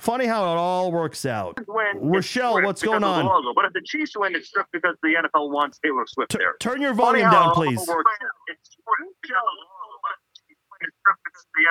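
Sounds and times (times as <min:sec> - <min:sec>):
speech: 0:00.0 - 0:10.2, 0:10.8 - 0:11.6
thin tinny voice over a phone line: 0:07.1 - 0:08.0
caller's phone line echoing host's voice: 0:07.2 - 0:08.0.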